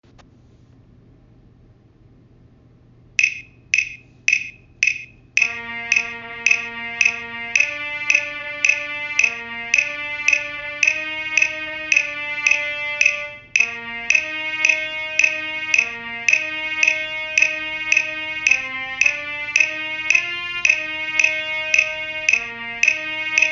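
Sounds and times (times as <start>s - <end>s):
trumpet: 5.4s - 23.5s.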